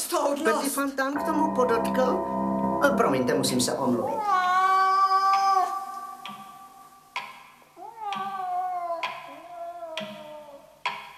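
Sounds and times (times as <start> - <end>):
speech: 0.2 - 4.6
cat meowing: 4.1 - 6.0, 7.8 - 10.7
sharp ticks: 6.2 - 6.6, 7.2 - 8.4, 9.0 - 11.1.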